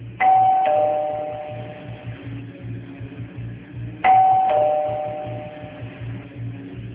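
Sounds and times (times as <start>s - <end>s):
doorbell ding-dong chime: 0.2s - 2.1s, 4.0s - 5.9s.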